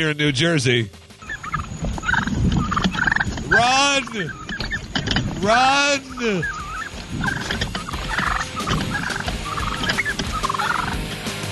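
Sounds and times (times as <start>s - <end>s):
speech: 0.0s - 1.0s, 3.5s - 4.4s, 5.0s - 7.4s
turkey gobbling: 1.1s - 11.4s.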